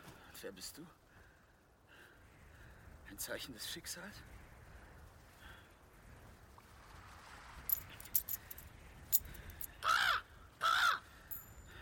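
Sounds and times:
speech: 0.4s - 1.0s, 3.1s - 4.4s
faint metallic jingling clicks: 7.7s - 9.7s, 11.3s - 11.8s
raven cawing: 9.8s - 11.1s.

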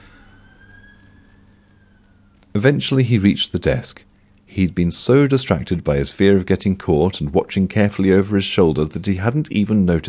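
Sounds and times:
police car siren wailing: 0.0s - 3.1s
speech: 2.6s - 10.0s.

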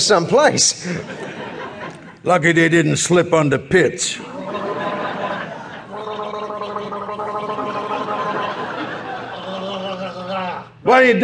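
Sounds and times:
speech: 0.1s - 1.4s, 2.2s - 4.6s, 10.9s - 11.2s
laughter: 0.8s - 2.2s, 4.2s - 10.8s
person gargling to soothe a rough throat: 5.9s - 8.3s.

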